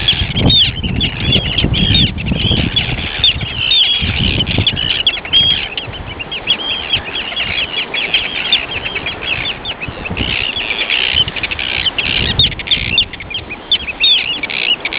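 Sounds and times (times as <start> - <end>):
Arctic tern calling: 0.0 - 14.9.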